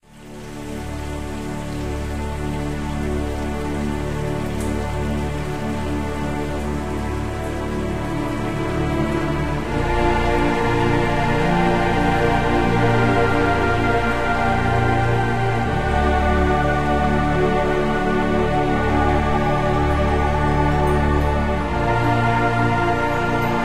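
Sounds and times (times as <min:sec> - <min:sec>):
forest at night ambience: 0:00.0 - 0:23.6.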